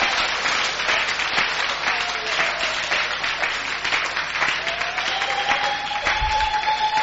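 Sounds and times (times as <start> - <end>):
large congregation clapping and applauding: 0.0 - 7.0.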